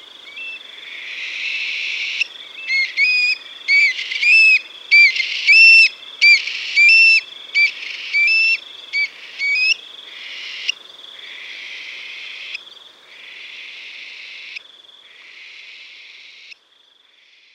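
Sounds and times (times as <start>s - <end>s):
Eurasian stone-curlew calls: 2.0s - 9.8s.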